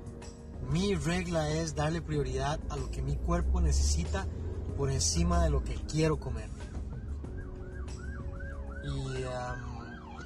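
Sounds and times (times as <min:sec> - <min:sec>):
road traffic rumble: 0:00.2 - 0:10.2
speech: 0:00.7 - 0:06.7, 0:08.9 - 0:09.7
ambulance siren wailing: 0:06.4 - 0:10.2.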